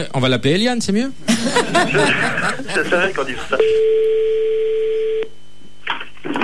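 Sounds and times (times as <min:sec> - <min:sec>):
speech: 0:00.0 - 0:04.4
laughter: 0:01.2 - 0:03.6
telephone dial tone while placing a call: 0:03.6 - 0:05.3.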